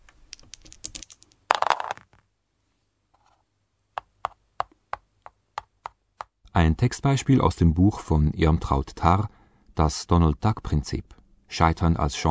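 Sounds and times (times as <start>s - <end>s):
dice rattling and clattering: 0.0s - 2.2s
crisp taps on a hard surface: 4.0s - 6.4s
speech: 6.6s - 12.2s.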